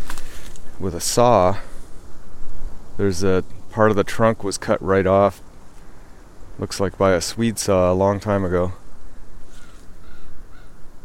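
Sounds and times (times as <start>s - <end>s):
outdoor wind: 0.0s - 11.0s
speech: 0.8s - 1.7s, 3.0s - 5.4s, 6.6s - 8.8s
raven cawing: 5.6s - 6.5s, 8.9s - 11.0s.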